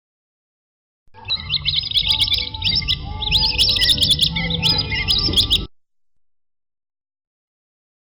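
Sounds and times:
spotted whistling duck whistled squeaks and twitters: 1.2 - 5.7.

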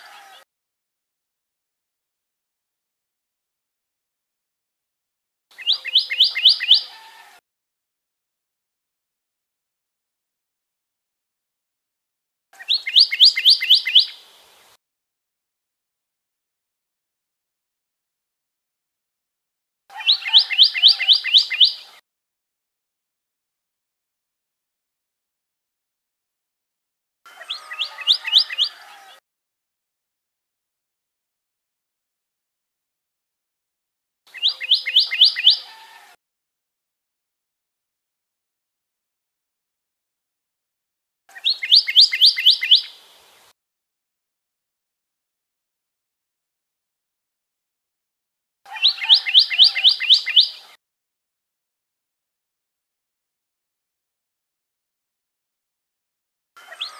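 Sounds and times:
pyrrhuloxia chirping: 5.6 - 7.0, 12.6 - 14.3, 20.0 - 21.9, 34.3 - 35.8, 41.4 - 43.0, 48.7 - 50.7.

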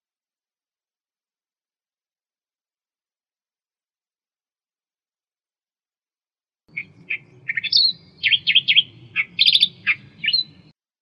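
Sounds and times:
Australian reed warbler song of harsh churring and whistled notes: 6.7 - 10.8.

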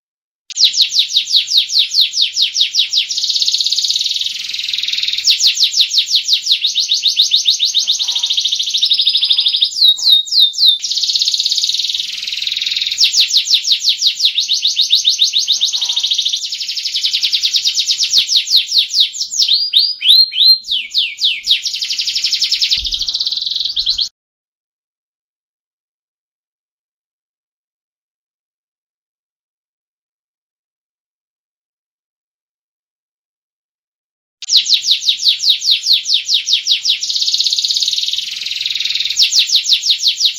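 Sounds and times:
standard canary singing: 0.5 - 24.1, 34.4 - 40.3.

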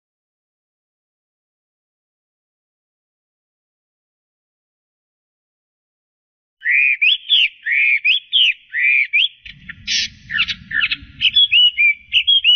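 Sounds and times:
Chinese hwamei singing whistled slurs: 6.6 - 12.5
low rumbling noise: 9.4 - 12.5.

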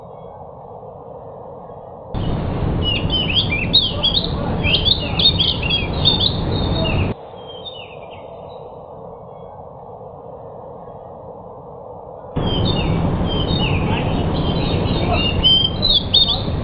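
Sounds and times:
steady hiss: 0.8 - 16.6
trained pied bush chat singing warbled notes: 2.2 - 9.6, 12.4 - 16.6.

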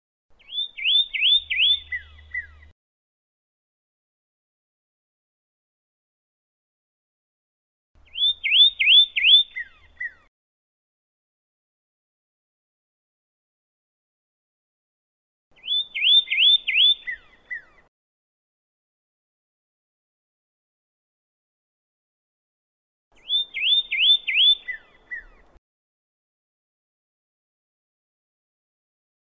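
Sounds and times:
pyrrhuloxia chirping: 0.4 - 2.7, 8.0 - 10.3, 15.6 - 17.9, 23.2 - 25.6.

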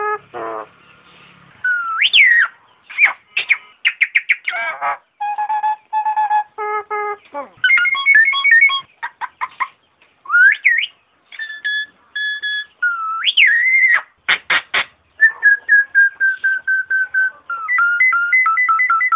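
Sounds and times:
Nias hill myna whistling: 1.6 - 8.9, 10.3 - 14.1, 15.2 - 19.1.

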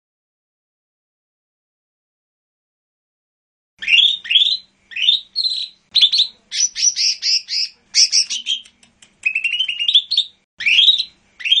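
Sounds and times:
lesser green leafbird song of slurred whistles: 3.8 - 11.5.

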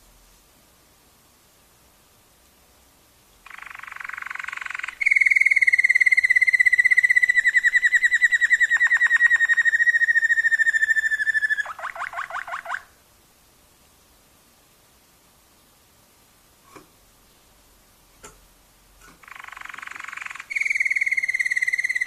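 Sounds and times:
Waterslager canary singing a rolled trill: 3.4 - 13.0, 19.1 - 22.0.

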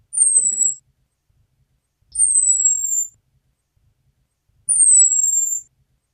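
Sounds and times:
female orange-headed thrush giving thin high whistled calls sliding downward: 0.1 - 0.8, 2.1 - 3.1, 4.7 - 5.7.

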